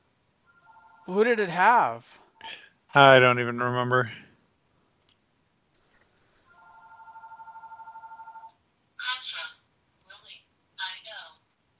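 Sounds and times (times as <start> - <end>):
telephone ringing with electronic trill: 0.5 - 1.2, 6.5 - 8.6
short bursts of speech: 3.0 - 4.3, 9.0 - 11.4.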